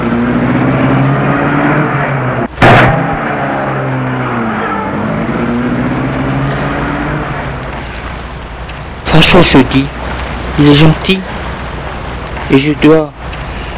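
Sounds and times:
car engine starting and car pulling away: 0.0 - 8.8
speech: 9.2 - 10.0, 10.6 - 11.3, 12.5 - 13.2.

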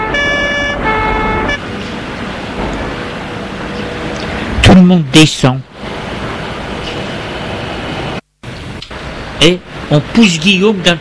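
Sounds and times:
loud car horn blasts: 0.0 - 1.7
engine rumble of a car pulling to a stop: 0.0 - 10.9
traffic noise: 0.0 - 10.9
speech: 4.9 - 5.7, 9.4 - 10.9.

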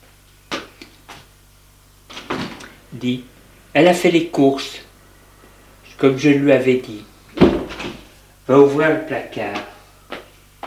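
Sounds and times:
speech: 3.0 - 4.9, 6.0 - 7.1, 8.5 - 9.7
refrigerator door being opened: 7.4 - 8.0.

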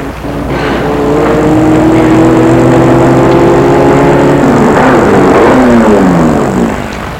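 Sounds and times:
car engine slowing to a stop: 0.1 - 7.1.

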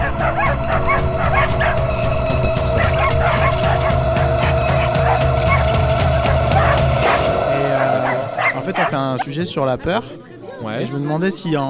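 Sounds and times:
dog barking: 0.0 - 1.9, 2.8 - 9.0
speech: 9.0 - 11.6.

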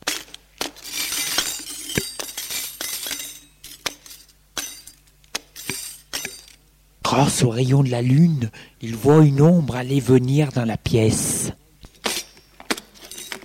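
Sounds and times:
footsteps walking on broken glass debris: 0.0 - 6.6, 11.8 - 13.4
faint hiss: 0.0 - 13.4
speech: 7.2 - 11.6.

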